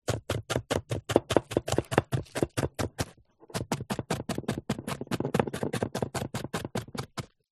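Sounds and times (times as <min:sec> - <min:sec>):
knife chopping onion fast: 0:00.0 - 0:07.4.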